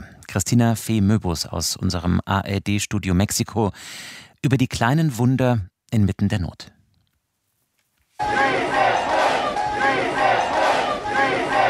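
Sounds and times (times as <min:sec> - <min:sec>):
speech: 0:00.4 - 0:06.7
crowd of rescuers and relatives cheering and shouting: 0:08.2 - 0:11.6.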